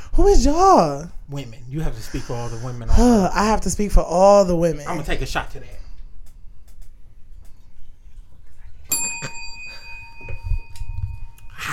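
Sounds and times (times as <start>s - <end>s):
speech: 0.2s - 5.8s
single bell struck with a clear sustained metallic tone: 8.9s - 11.7s.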